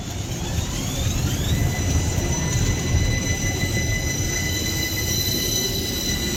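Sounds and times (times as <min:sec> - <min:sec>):
thin metallic tram wheel squeals: 0:00.0 - 0:06.3
tram rumbling along its rails: 0:00.0 - 0:06.3.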